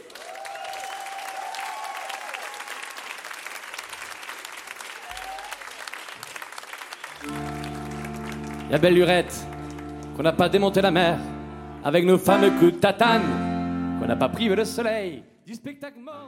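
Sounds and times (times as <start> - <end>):
concert audience clapping an ovation for a guest: 0.0 - 11.1
speech: 8.7 - 9.5, 10.2 - 13.5, 14.1 - 16.2.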